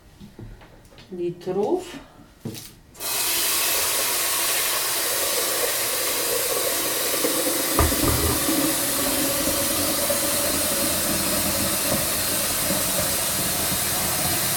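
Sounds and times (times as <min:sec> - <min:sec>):
speech: 0:01.1 - 0:02.7
water running from a tap into a pot: 0:03.0 - 0:14.5.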